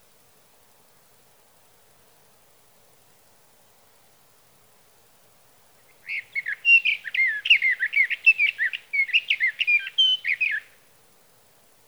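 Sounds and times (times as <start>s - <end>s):
sage thrasher song: 5.9s - 10.8s.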